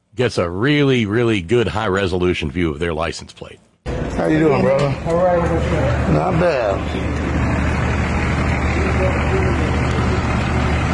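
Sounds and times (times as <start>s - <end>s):
speech: 0.2s - 7.2s
Cummins turbo diesel Dodge Ram 2500 pickup truck engine idling: 3.9s - 10.9s.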